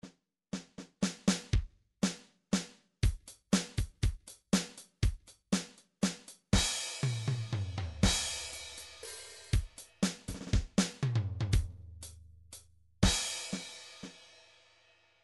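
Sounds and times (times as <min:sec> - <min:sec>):
MIDI drums playing a waltz: 0:00.6 - 0:12.2, 0:13.0 - 0:14.2.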